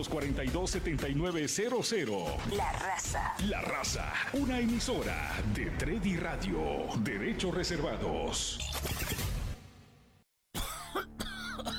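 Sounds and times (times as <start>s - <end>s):
speech: 0.0s - 9.1s
person coughing and hacking: 10.6s - 11.7s.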